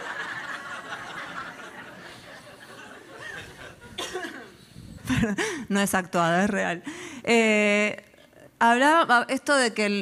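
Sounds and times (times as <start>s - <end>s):
laughter: 0.0s - 4.5s
small short cough: 3.3s - 5.4s
speech: 5.2s - 8.0s, 8.6s - 10.0s.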